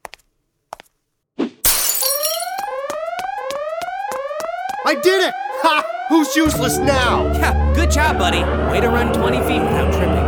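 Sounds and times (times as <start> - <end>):
glass display case holding a tusk being smashed: 1.6 - 2.7
sharp repeating alarm chirps: 2.5 - 10.2
speech: 4.9 - 10.2.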